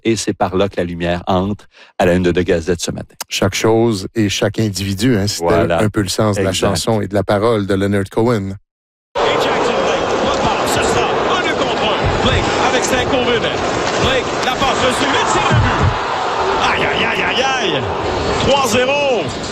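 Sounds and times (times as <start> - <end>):
speech: 0.0 - 8.6, 12.9 - 16.0, 16.8 - 19.5
ice hockey arena crowd roaring and cheering after a goal: 9.2 - 19.5.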